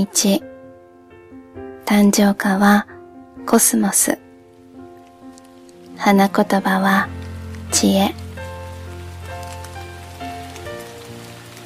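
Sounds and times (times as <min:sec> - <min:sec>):
speech: 0:00.0 - 0:00.5, 0:01.9 - 0:04.2, 0:06.0 - 0:08.2
rain falling on a car: 0:04.6 - 0:11.6.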